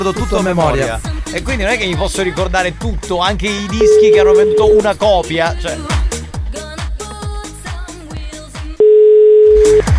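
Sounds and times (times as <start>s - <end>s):
speech: 0.0s - 6.0s
upbeat music with a steady beat: 0.0s - 9.9s
sustained phone ringback tone: 3.8s - 4.9s, 8.8s - 9.8s.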